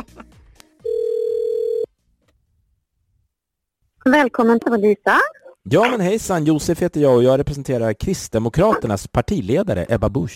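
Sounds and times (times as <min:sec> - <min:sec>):
telephone ringback tone over a phone line: 0:00.8 - 0:01.9
speech: 0:04.1 - 0:10.3.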